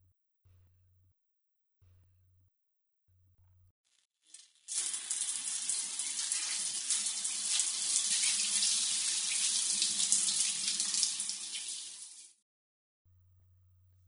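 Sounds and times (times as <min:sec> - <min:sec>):
shower water running: 0:04.2 - 0:12.4.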